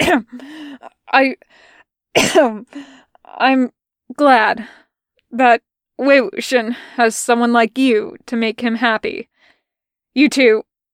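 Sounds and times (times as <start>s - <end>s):
person coughing and clearing throat in hoarse voiced bursts: 0.0s - 1.0s, 2.2s - 2.6s
speech: 0.1s - 9.3s, 10.2s - 10.7s.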